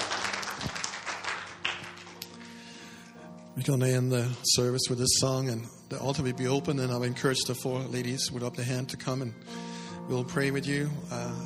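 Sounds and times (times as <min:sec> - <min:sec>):
audience applauding at a church service: 0:00.0 - 0:02.9
speech: 0:03.6 - 0:11.4.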